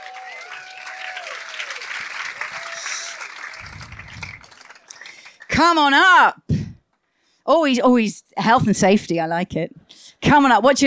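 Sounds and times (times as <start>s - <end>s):
whoops and cheers: 0.0s - 5.1s
crowd applauding: 0.0s - 5.6s
low rumble: 3.6s - 4.5s
speech: 5.6s - 6.4s, 7.5s - 10.8s.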